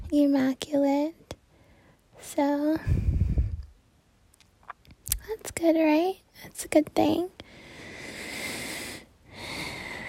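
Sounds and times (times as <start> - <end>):
speech: 0.1 - 1.2, 2.2 - 3.0, 5.3 - 7.4
deep breath: 1.5 - 2.0, 2.8 - 3.7, 7.4 - 10.0.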